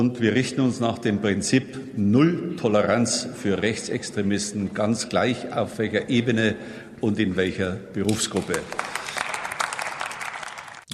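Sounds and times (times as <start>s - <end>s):
speech: 0.0s - 9.0s
audience applause: 8.4s - 10.9s.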